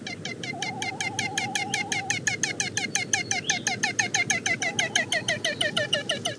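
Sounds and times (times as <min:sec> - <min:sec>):
male great frigatebird hoarse cackling rattle: 0:00.0 - 0:06.3.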